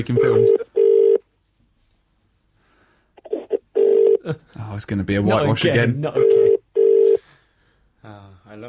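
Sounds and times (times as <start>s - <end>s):
speech: 0.0s - 0.7s, 4.2s - 6.5s, 8.0s - 8.6s
telephone ringing tone on a call to a mobile phone: 0.2s - 1.2s, 3.2s - 4.2s, 6.2s - 7.2s.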